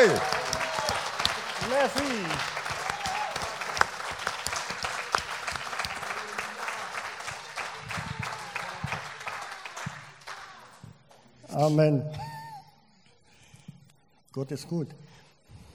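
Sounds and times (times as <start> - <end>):
speech: 0.0 - 0.4, 1.7 - 2.6, 11.6 - 12.2, 14.4 - 15.1
church congregation applauding and acclaiming during a service: 0.0 - 11.3.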